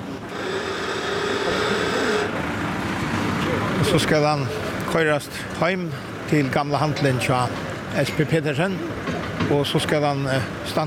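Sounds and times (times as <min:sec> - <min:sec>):
main crane motor droning while hoisting an old deck boat: 0:00.0 - 0:03.8
speech: 0:03.9 - 0:10.8.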